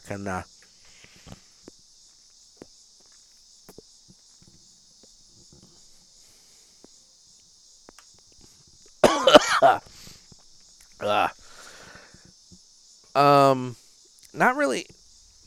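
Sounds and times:
speech: 0:00.1 - 0:00.6, 0:09.6 - 0:09.9, 0:11.0 - 0:11.4, 0:13.2 - 0:15.0
person coughing after retrohaling cigar smoke: 0:09.0 - 0:09.8.

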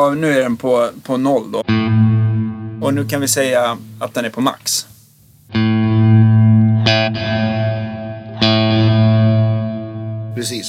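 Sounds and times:
speech: 0:00.0 - 0:02.1, 0:02.8 - 0:04.9, 0:05.5 - 0:05.8, 0:10.4 - 0:10.6
electric guitar chord strikes through a reverb pedal with maximum pre-delay: 0:01.6 - 0:04.1, 0:05.5 - 0:10.4.

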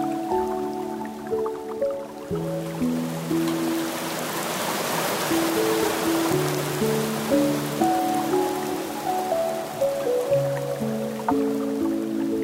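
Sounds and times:
gentle Japanese water stream murmuring with drips and trickles: 0:00.0 - 0:12.4
soft relaxing piano playing slow sustained chords: 0:00.0 - 0:12.4.

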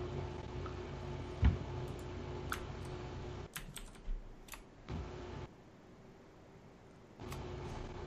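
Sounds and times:
steady low hum: 0:00.0 - 0:08.0
quiet computer keyboard typing: 0:03.5 - 0:04.7.

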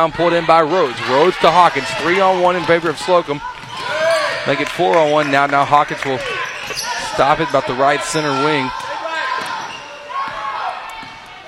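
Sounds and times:
speech: 0:00.0 - 0:03.5, 0:04.4 - 0:08.8
crowd noise: 0:00.0 - 0:11.4
basketball dribbled on court during a women's game: 0:01.8 - 0:04.4, 0:09.3 - 0:11.4.

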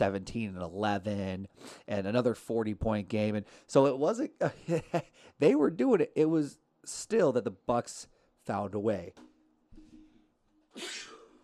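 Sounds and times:
speech: 0:00.0 - 0:09.3, 0:10.8 - 0:11.1
person sneezing: 0:10.7 - 0:11.4.

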